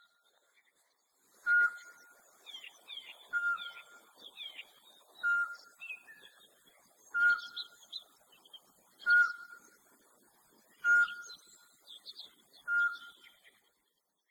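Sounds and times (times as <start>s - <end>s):
Eurasian pygmy owl calling: 1.5s - 6.3s, 7.1s - 7.9s, 9.0s - 9.7s, 10.8s - 11.5s, 12.6s - 13.3s.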